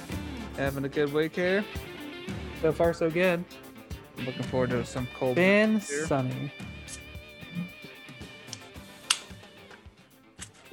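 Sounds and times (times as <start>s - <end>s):
speech: 0.6s - 3.6s, 4.2s - 6.7s
IPA beer can cracked open in sunny weather: 8.5s - 9.8s.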